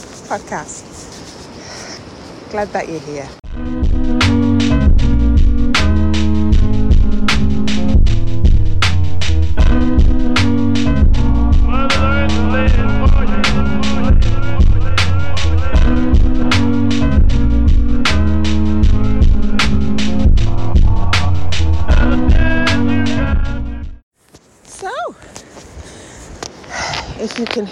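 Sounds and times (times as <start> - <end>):
speech: 0.3 - 0.9, 2.5 - 3.4
rhythmic music passage: 3.5 - 24.0.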